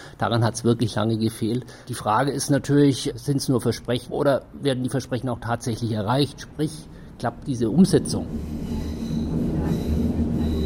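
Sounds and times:
speech: 0.2s - 8.8s
S-Bahn train running toward Potsdamer Platz station in Berlin: 6.3s - 10.6s
S-Bahn train tonal hum: 6.8s - 10.6s.

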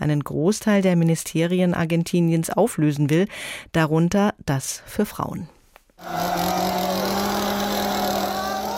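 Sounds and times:
speech: 0.0s - 6.7s
chainsaw roaring at high rev: 6.0s - 8.7s.

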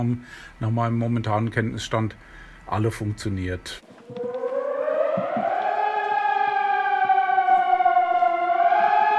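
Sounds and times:
speech: 0.0s - 4.3s
civil defense warning siren wailing: 3.9s - 9.1s.

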